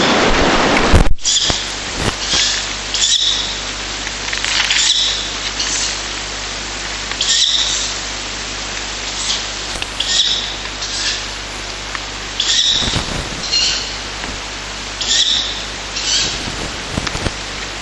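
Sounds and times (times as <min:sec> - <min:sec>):
steady low hum: 0:00.0 - 0:17.7
Ural owl chicks giving harsh hissing begging calls while being fed: 0:01.3 - 0:03.6, 0:07.2 - 0:08.0, 0:09.1 - 0:11.4, 0:12.4 - 0:14.2, 0:14.9 - 0:17.2.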